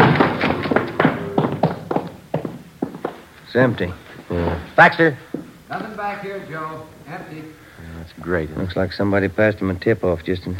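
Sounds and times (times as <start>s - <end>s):
quick firm footsteps on a hard floor entering a house: 0.0s - 3.3s, 5.3s - 5.9s
speech: 3.6s - 10.5s.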